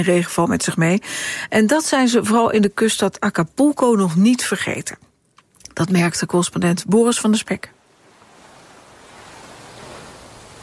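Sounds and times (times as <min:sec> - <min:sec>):
speech: 0:00.0 - 0:05.1, 0:05.8 - 0:07.8
surf crashing onto a sandy beach: 0:07.8 - 0:10.6.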